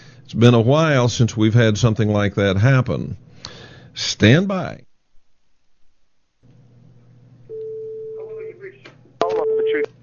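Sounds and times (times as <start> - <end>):
speech: 0.3 - 4.9
telephone call ringing through to voicemail: 7.5 - 8.6, 9.2 - 9.9.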